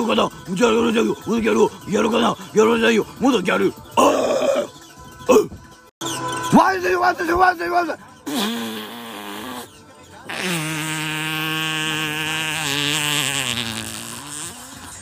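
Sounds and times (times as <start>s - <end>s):
speech: 0.0s - 4.2s, 5.3s - 8.8s, 10.4s - 10.8s
loud buzzy fart: 8.2s - 15.0s.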